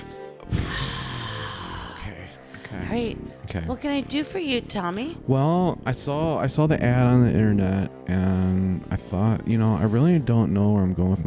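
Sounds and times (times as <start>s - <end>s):
person taking a deep breath: 0.5s - 2.8s
speech: 2.9s - 11.2s.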